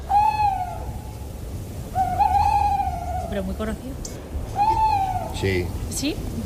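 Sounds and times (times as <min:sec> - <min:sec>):
tawny owl hooting, played back: 0:00.0 - 0:03.7, 0:04.5 - 0:05.7
speech: 0:03.4 - 0:04.2, 0:05.4 - 0:06.4.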